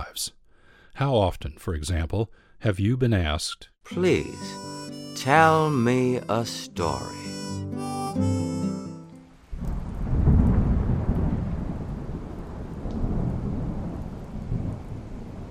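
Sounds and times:
speech: 0:00.2 - 0:00.4, 0:01.0 - 0:04.6, 0:05.2 - 0:08.4
brief sustained musical tone: 0:03.9 - 0:09.4
steady hissing rain: 0:09.3 - 0:15.5
deep rolling rumble of thunder: 0:09.5 - 0:15.5.

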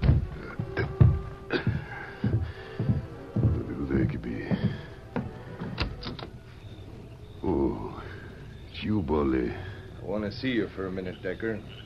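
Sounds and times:
hard knocking on the door of a home: 0:00.0 - 0:03.6
faint sustained musical tone: 0:00.0 - 0:11.8
speech: 0:09.0 - 0:11.8.

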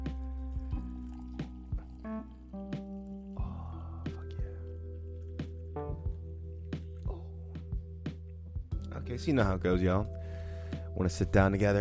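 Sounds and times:
coffee pouring into a cup: 0:00.0 - 0:06.8
speech: 0:09.1 - 0:10.2, 0:11.0 - 0:11.7.

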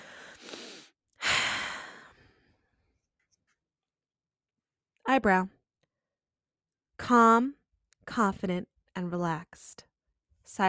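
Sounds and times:
deep breath during a calming tapping exercise: 0:00.0 - 0:02.7
speech: 0:05.1 - 0:05.6, 0:07.0 - 0:09.9, 0:10.5 - 0:10.6.

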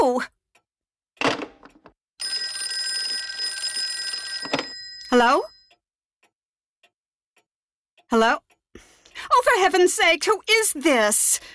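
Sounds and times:
telephone ringing with a clattering bell: 0:02.2 - 0:05.7
speech: 0:05.2 - 0:05.5, 0:08.1 - 0:08.4, 0:09.3 - 0:11.5.

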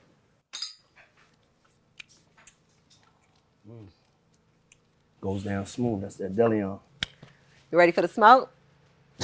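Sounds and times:
glasses of tequila clinking in a toast: 0:00.5 - 0:00.9
speech: 0:03.7 - 0:04.0, 0:05.2 - 0:06.9, 0:07.7 - 0:08.6.

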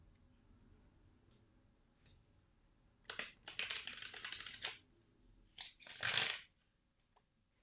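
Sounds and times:
Rider Waite Smith tarot deck being shuffled: 0:03.1 - 0:04.8, 0:05.6 - 0:06.5.

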